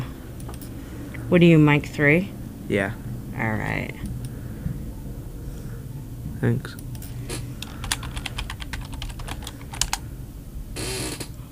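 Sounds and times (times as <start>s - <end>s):
speech: 1.3s - 4.2s, 6.4s - 6.8s
rapid clacking of keys on a computer keyboard: 7.6s - 10.0s.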